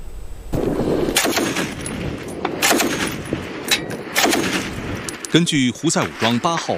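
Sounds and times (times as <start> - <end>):
sharper louder gunshot reports: 0.5 - 1.8, 2.6 - 3.2, 4.1 - 5.0
dense gunfire in combat: 0.5 - 5.2
speech: 5.3 - 6.7.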